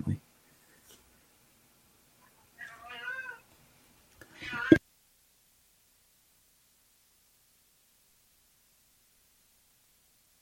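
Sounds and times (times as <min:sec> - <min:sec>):
hungry female cat meowing for food: 0:02.3 - 0:03.5, 0:04.3 - 0:04.8.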